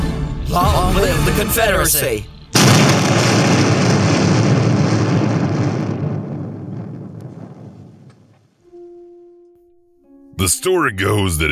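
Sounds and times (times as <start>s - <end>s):
speech: 0.5s - 3.2s, 10.4s - 11.4s
boat explosion: 2.6s - 8.3s.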